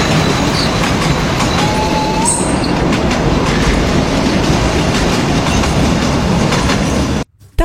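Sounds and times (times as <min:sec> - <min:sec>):
brief high metallic squeals of an old train: 0:00.0 - 0:02.8
old train rolling along the tracks: 0:00.0 - 0:07.3.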